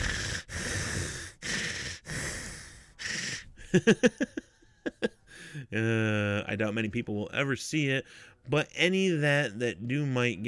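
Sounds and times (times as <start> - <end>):
heavy breathing: 0.0 - 3.8, 5.2 - 5.8, 8.0 - 8.5
laughter: 3.7 - 5.2
speech: 3.7 - 10.4.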